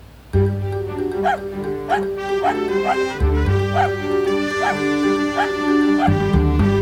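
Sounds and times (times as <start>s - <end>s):
bouncy news jingle with steady bass line: 0.4s - 6.8s
short dog barks or yips layered into music: 1.2s - 6.3s.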